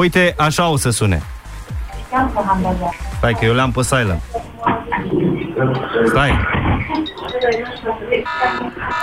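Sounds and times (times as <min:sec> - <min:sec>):
speech: 0:00.0 - 0:01.4, 0:02.1 - 0:04.4, 0:05.0 - 0:09.0
phone alarm with bright electronic tone: 0:06.9 - 0:09.0.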